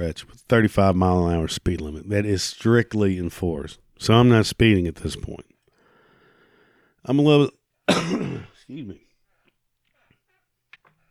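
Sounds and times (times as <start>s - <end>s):
speech: 0.0s - 5.5s, 7.0s - 9.0s
person having a coughing fit: 7.9s - 9.1s.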